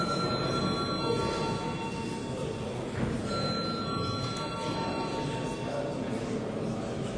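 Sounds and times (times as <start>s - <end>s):
parliament chamber electric bell ringing to call a vote: 0.0s - 2.2s, 3.3s - 5.4s
faint murmur of the parliament chamber: 0.0s - 7.1s.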